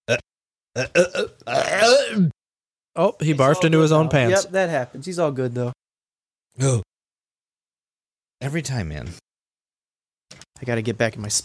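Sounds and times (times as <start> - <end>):
speech: 0.1 - 2.4, 3.0 - 5.8, 6.6 - 6.9, 8.4 - 9.2, 10.3 - 11.4
baby burping: 0.8 - 2.4.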